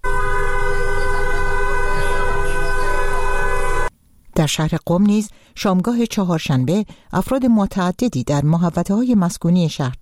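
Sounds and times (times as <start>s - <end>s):
car horns honking in street: 0.0s - 3.9s
street rumble: 0.0s - 3.9s
speech: 4.4s - 10.0s.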